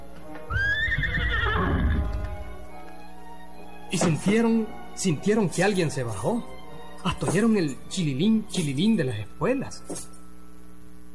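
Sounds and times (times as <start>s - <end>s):
horse hooves clattering and thumping: 0.1s - 3.0s
horse neighing: 0.5s - 2.1s
speech: 3.9s - 10.2s.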